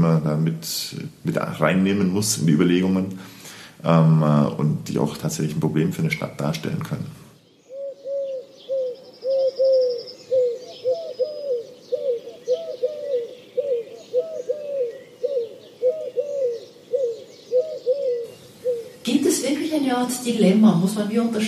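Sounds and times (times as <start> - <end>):
speech: 0.3 - 7.2, 20.0 - 21.4
faint chirps from small birds: 7.4 - 19.5
pigeons cooing in a city: 7.6 - 20.0.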